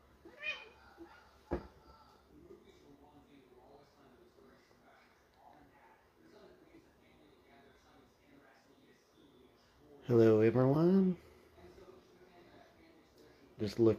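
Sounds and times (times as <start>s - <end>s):
pet cat meowing: 0.2s - 1.0s
speech: 10.1s - 11.2s, 13.6s - 13.9s.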